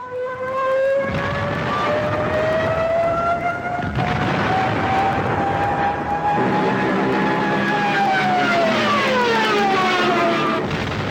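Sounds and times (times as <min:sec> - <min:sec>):
Stuka dive bomber siren screeching while diving: 0:00.0 - 0:10.8
diving Stuka dive bomber engine roaring: 0:01.0 - 0:11.0.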